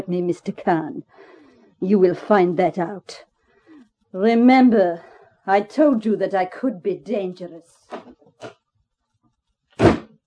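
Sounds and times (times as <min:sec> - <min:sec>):
speech: 0:00.0 - 0:03.3, 0:04.1 - 0:08.6
door slammed shut hard: 0:09.8 - 0:10.1.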